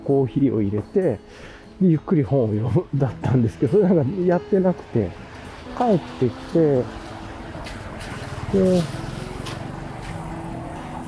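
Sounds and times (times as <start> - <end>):
speech: 0.1 - 7.0, 8.5 - 9.0
vehicle engine rumble going past outside: 5.1 - 11.0.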